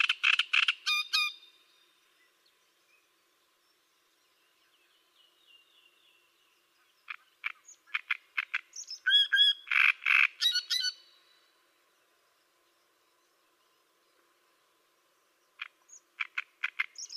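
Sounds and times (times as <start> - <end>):
great reed warbler singing harsh chattering notes and nasal whistles: 0.0 - 17.1.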